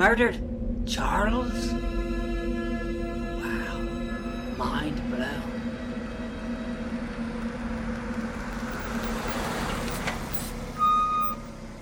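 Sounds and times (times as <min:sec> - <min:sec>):
speech: 0:00.0 - 0:01.9, 0:04.6 - 0:05.5
vehicle engine idling while pulling into a driveway: 0:00.4 - 0:11.8
bright electronic beep: 0:10.3 - 0:11.4.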